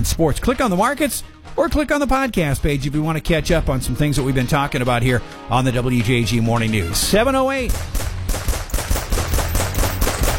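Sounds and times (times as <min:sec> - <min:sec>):
speech: 0:00.0 - 0:08.1
gunfire sound effect in a firearms advert: 0:07.7 - 0:10.3.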